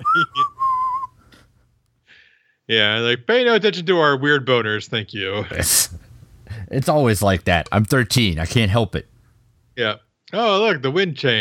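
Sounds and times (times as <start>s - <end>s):
person whistling a short three-note phrase: 0.0s - 1.3s
speech: 2.7s - 9.1s, 9.8s - 11.3s.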